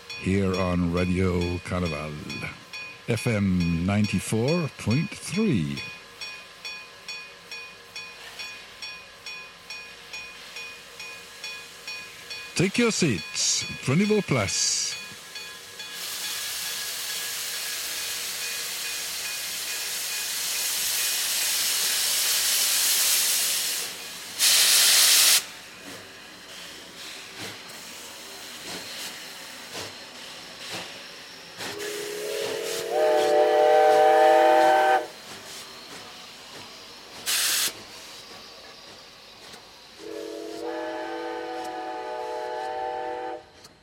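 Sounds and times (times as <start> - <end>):
steam train hissing with bursts of escaping steam: 0.0 - 43.8
speech: 0.2 - 6.0, 12.6 - 14.7
steam train whistle in long harmonic blasts: 31.7 - 35.2, 40.0 - 43.7.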